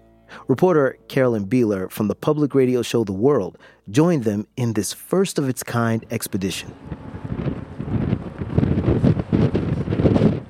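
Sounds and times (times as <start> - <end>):
speech: 0.5 - 7.1
strong gusty wind buffeting the microphone at a port: 6.2 - 10.4.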